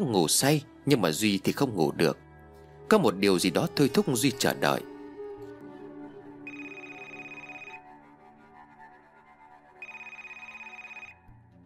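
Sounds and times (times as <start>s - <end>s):
speech: 0.0s - 2.2s, 2.9s - 4.9s
telephone ringing with an electronic trill in the middle of the night: 6.5s - 7.8s, 9.8s - 11.3s.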